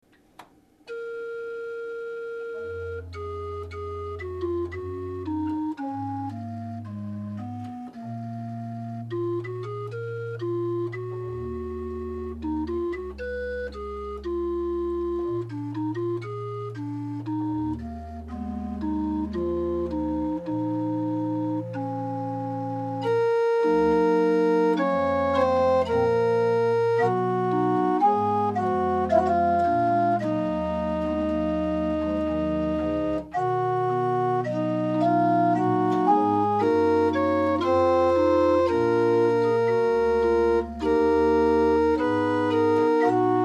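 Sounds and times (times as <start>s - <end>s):
house organ playing a psalm: 0.9s - 43.4s.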